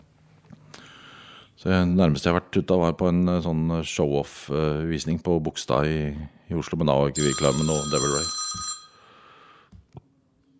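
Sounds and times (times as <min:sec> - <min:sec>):
speech: 0:01.6 - 0:08.7
mobile phone ringing with electronic tone: 0:07.2 - 0:09.2.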